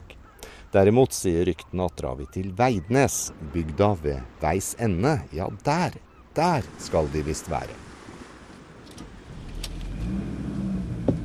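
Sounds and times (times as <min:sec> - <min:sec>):
speech: 0:00.1 - 0:07.9
low rumbling road noise: 0:03.3 - 0:11.2
car engine humming heard from inside the vehicle: 0:09.0 - 0:11.2.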